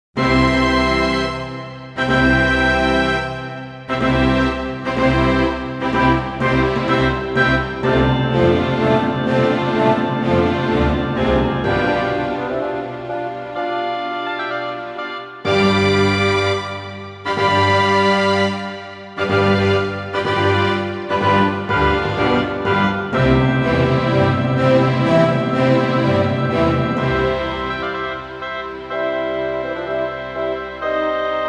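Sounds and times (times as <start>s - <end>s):
classical piano concerto: 0.2s - 31.4s.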